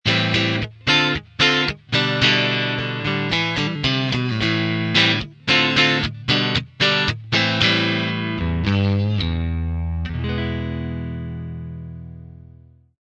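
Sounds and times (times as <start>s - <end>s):
clean twin neck steel guitar: 0.1s - 12.8s.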